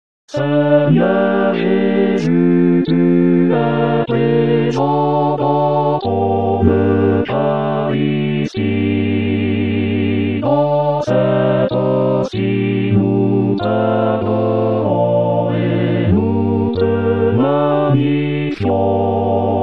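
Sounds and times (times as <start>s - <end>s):
choir singing a chorale: 0.3s - 19.6s.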